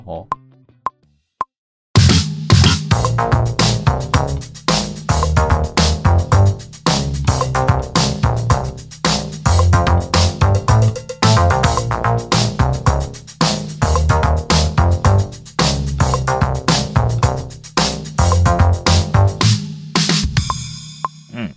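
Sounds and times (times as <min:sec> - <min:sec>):
speech: 0:00.0 - 0:00.4
live bass guitar: 0:02.0 - 0:19.6
drums: 0:02.0 - 0:21.5
bouncy springy synth bass line: 0:02.9 - 0:04.4, 0:05.1 - 0:08.8, 0:09.5 - 0:13.2, 0:13.8 - 0:17.4, 0:18.2 - 0:19.4.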